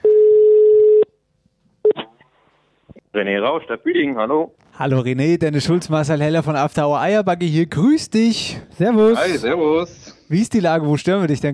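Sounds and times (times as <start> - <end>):
telephone ringback tone while placing a call: 0.0 - 1.1
speech: 3.2 - 11.5.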